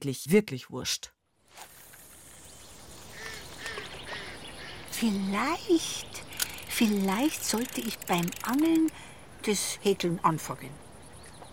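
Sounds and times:
speech: 0.0 - 1.7, 5.0 - 6.2, 6.8 - 10.8
steady outdoor hiss: 1.3 - 11.5
ducks quacking: 3.1 - 4.9.

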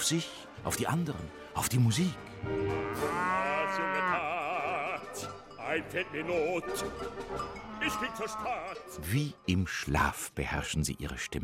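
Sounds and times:
speech: 0.0 - 4.4, 5.7 - 11.4
cow giving a long loud moo: 2.3 - 5.2, 7.5 - 8.9.

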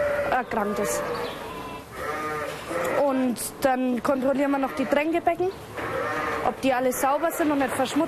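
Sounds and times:
sheep bleating inside a barn: 0.0 - 3.2, 5.8 - 8.0
speech: 0.3 - 1.5, 2.7 - 8.0.

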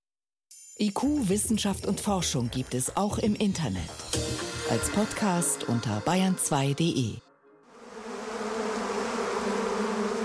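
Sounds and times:
speech: 0.8 - 7.2
many bees buzzing over a flowering rapeseed field: 7.7 - 10.2.

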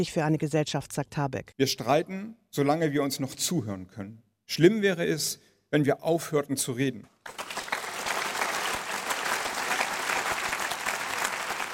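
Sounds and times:
speech: 0.0 - 7.4
audience applause: 7.3 - 11.7.

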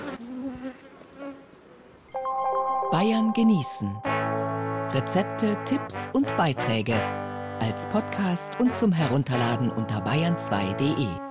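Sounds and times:
honeybees buzzing: 0.0 - 2.1
speech: 2.9 - 4.2, 4.9 - 11.2.

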